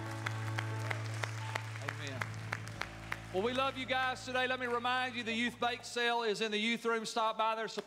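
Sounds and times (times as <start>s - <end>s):
room full of people clapping and applauding: 0.0s - 5.8s
speech: 3.3s - 7.8s.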